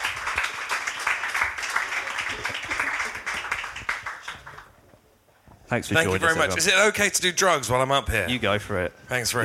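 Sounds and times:
crowd applauding: 0.0s - 4.8s
speech: 5.7s - 9.4s.

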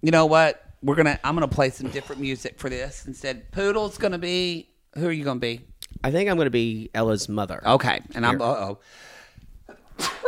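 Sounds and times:
speech: 0.0s - 9.1s
quiet inhale: 8.8s - 9.5s
person sneezing: 9.8s - 10.2s.

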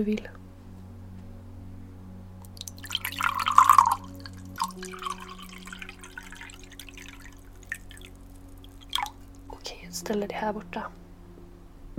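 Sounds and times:
speech: 0.0s - 0.4s, 10.1s - 11.0s
low steady hum: 0.0s - 11.9s
water pouring into a glass: 2.6s - 9.5s.

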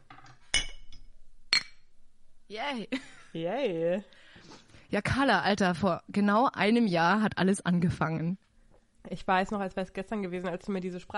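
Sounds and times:
two glasses clinking together in a toast: 0.1s - 1.9s
speech: 2.5s - 8.4s, 9.0s - 11.1s.

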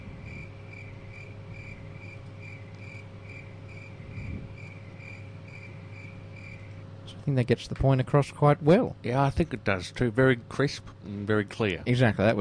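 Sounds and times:
crickets chirping at night: 0.0s - 7.0s
low constant hum: 0.0s - 12.4s
speech: 7.2s - 12.4s.

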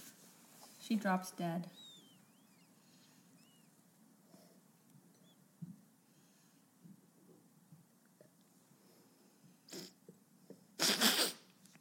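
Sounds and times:
speech: 0.9s - 1.8s
person sniffing: 9.7s - 10.0s, 10.8s - 11.5s
loud breathy sneeze: 10.8s - 11.5s.

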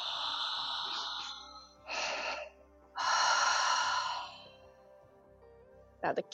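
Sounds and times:
slow deep breaths with ocean-like throat hiss during a breathing exercise: 0.0s - 5.0s.

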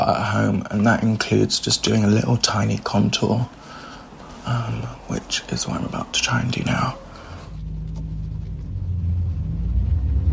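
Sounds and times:
speech: 0.0s - 3.7s, 4.4s - 7.0s
road noise from inside a moving car: 0.0s - 10.3s
low engine rumble from inside a moving car: 5.6s - 10.3s.

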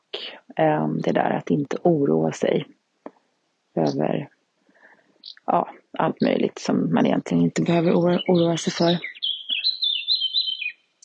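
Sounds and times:
speech: 0.5s - 2.8s, 3.8s - 4.4s, 5.2s - 9.1s
bird singing high warbling phrase with trills: 5.2s - 5.5s, 7.7s - 11.0s
bird chirp: 5.2s - 6.4s, 7.5s - 11.0s.

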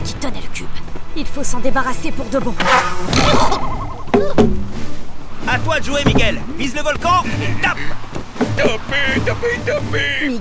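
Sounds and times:
speech: 1.2s - 4.5s, 5.5s - 10.3s
tsetse fly buzzing: 1.6s - 5.2s.

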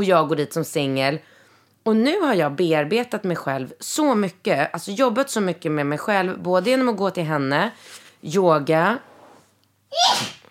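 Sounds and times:
speech: 0.0s - 9.1s, 9.9s - 10.4s
sneeze: 9.9s - 10.4s.

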